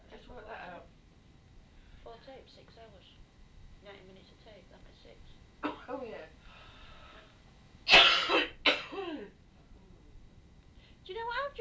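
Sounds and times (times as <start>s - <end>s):
speech: 2.1s - 6.4s
person coughing: 7.9s - 9.3s.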